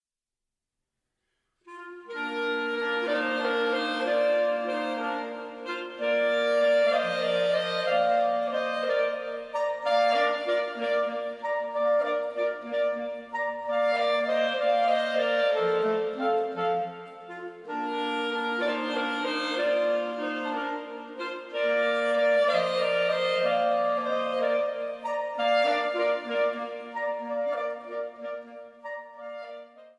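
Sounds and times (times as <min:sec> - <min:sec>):
clarinet trio playing shepherd music: 0:01.6 - 0:29.9.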